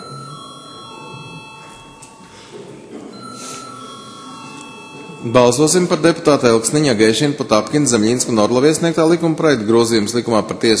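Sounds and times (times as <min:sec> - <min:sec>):
parliament bell ringing before a vote: 0:00.0 - 0:06.6
faint noise in the chamber: 0:00.0 - 0:10.7
speech: 0:05.2 - 0:10.7.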